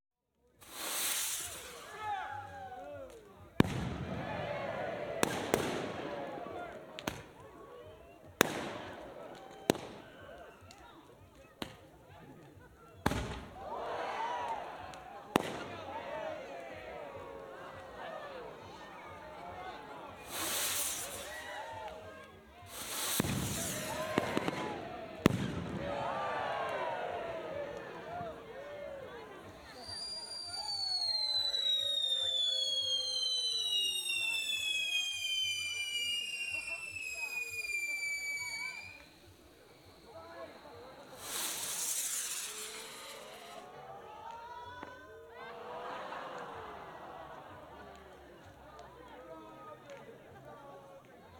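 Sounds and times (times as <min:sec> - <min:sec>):
people at a firework display: 0:00.4 - 0:51.3
firework display outdoors: 0:00.6 - 0:10.9, 0:13.0 - 0:43.8
laughter: 0:11.4 - 0:20.4, 0:23.3 - 0:30.1, 0:43.5 - 0:51.3.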